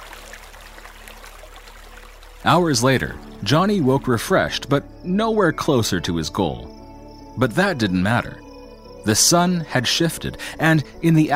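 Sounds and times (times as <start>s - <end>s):
fast-flowing creek water rushing: 0.0s - 4.7s
speech: 2.4s - 6.8s, 7.4s - 8.4s, 9.0s - 11.3s.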